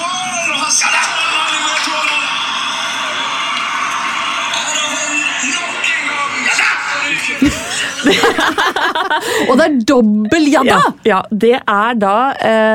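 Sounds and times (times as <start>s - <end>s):
man shouting cheers celebrating a penalty goal: 0.0s - 6.6s
laughter: 6.4s - 9.7s
speech: 8.0s - 12.7s.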